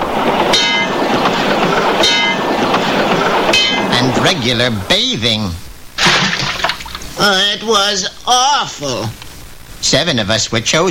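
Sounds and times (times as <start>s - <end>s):
subway train rattling on tracks: 0.0s - 5.4s
speech: 4.2s - 6.4s, 7.2s - 9.2s, 9.8s - 10.8s.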